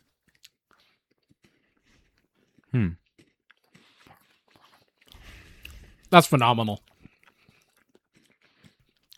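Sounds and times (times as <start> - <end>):
chewing crunchy Kit Kat wafer bar: 0.0 - 9.1
short vocal sound: 2.7 - 3.0
speech: 6.1 - 6.9.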